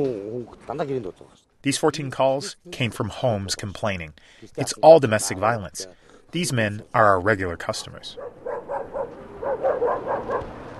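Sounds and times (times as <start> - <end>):
speech: 0.0 - 8.3
dogs barking after dark in a district of traditional circular tents in Ulaanbaatar: 8.1 - 10.7.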